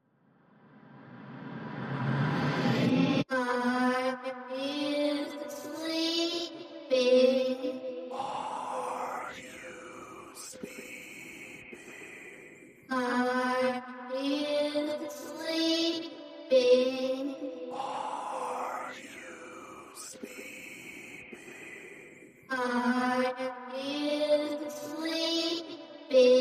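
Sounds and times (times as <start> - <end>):
horror vocals: 1.2 - 26.3.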